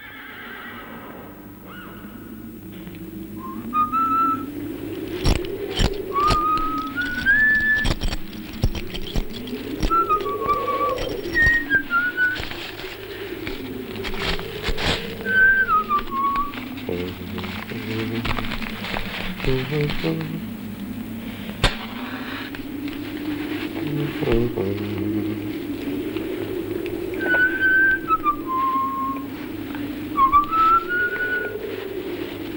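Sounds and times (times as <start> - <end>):
droning low accompaniment: 0.9 - 32.5
lone whistled melody over a spaghetti western-style film score: 3.4 - 4.5, 5.7 - 12.8, 15.2 - 18.2, 27.2 - 29.3, 30.2 - 31.6.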